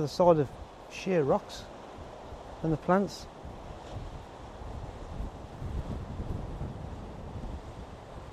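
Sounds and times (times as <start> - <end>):
speech: 0.0 - 1.7, 2.6 - 3.3
Irish Sea surf crashing against rocks below a steep cliff: 0.0 - 8.3
wind buffeting the microphone: 0.0 - 8.3.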